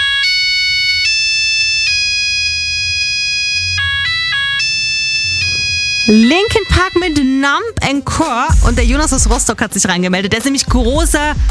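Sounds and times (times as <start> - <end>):
mobile phone ringtone: 0.0 - 7.7
speech: 6.1 - 11.4.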